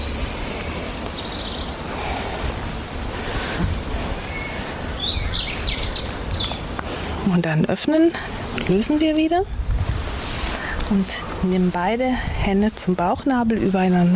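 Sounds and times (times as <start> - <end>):
birds singing and chirping outdoors: 0.0 - 2.0, 3.5 - 9.3
steady wash of broadband noise: 0.0 - 14.1
speech: 7.4 - 9.6, 10.9 - 14.1.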